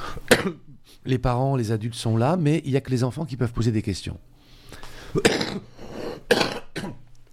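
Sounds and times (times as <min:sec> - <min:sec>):
short coughs: 0:00.3 - 0:00.7, 0:05.1 - 0:07.0
speech: 0:00.4 - 0:04.3, 0:05.1 - 0:05.7.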